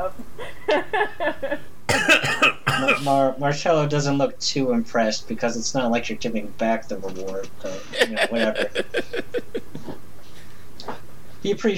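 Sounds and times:
short hacking coughs: 1.9 - 3.1
speech: 3.0 - 9.4, 11.4 - 11.7
laughter: 7.7 - 10.0.

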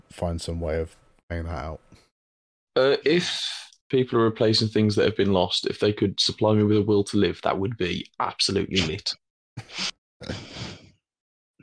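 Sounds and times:
speech: 0.1 - 2.1, 2.8 - 10.5
person sneezing: 9.6 - 10.8.

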